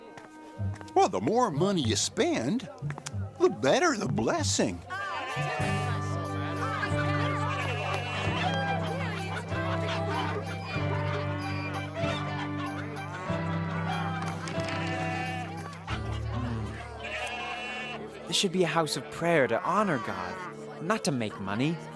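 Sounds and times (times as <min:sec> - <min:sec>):
speech: 0:00.7 - 0:05.8, 0:18.4 - 0:21.9
murmuring voices: 0:02.5 - 0:21.9
bleating: 0:04.9 - 0:06.1, 0:07.0 - 0:08.6, 0:14.4 - 0:15.7, 0:16.4 - 0:18.0, 0:20.0 - 0:20.6
laughter: 0:04.9 - 0:20.8
chickens clucking and squawking in a livestock market: 0:05.3 - 0:18.0.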